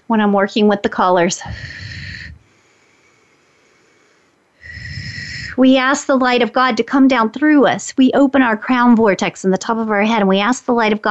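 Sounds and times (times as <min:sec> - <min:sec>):
speech: 0:00.1 - 0:01.9, 0:05.6 - 0:11.0
forceful breathing used to move energy: 0:01.4 - 0:05.6.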